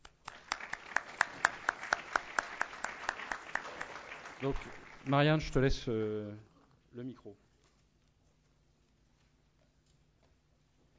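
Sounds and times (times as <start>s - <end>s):
small audience applauding: 0.0s - 5.6s
speech: 4.4s - 7.4s.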